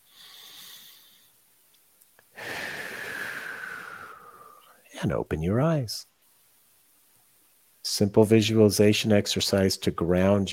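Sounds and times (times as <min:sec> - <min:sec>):
slow deep breath drawn in: 0:00.0 - 0:01.4, 0:02.3 - 0:04.8
speech: 0:05.0 - 0:06.1, 0:07.9 - 0:10.5.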